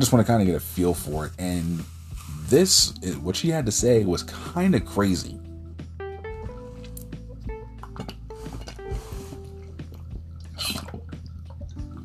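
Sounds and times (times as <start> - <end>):
speech: 0.0 - 5.4
person sipping and gulping water: 8.3 - 11.4.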